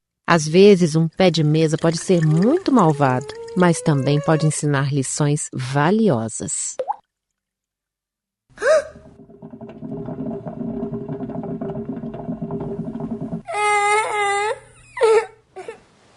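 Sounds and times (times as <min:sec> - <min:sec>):
speech: 0:00.3 - 0:06.9
child crying and sobbing: 0:02.6 - 0:04.6, 0:13.4 - 0:15.8.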